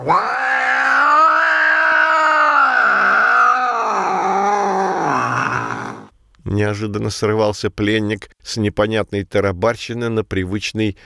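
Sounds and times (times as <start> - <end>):
speech: 0.0 - 0.4, 6.5 - 11.0
locked-up cat yowling and growling at night: 0.0 - 6.1.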